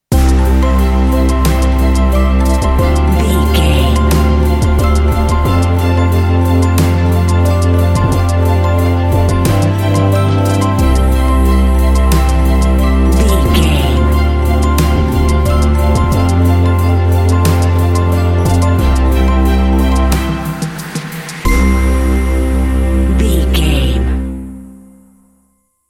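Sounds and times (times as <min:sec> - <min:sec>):
modern ambient music: 0:00.0 - 0:25.4.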